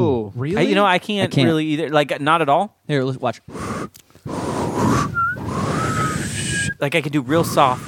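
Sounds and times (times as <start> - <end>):
speech: 0.3 - 4.9, 6.8 - 7.8
breathy, airy attempt at whistling: 3.5 - 7.8.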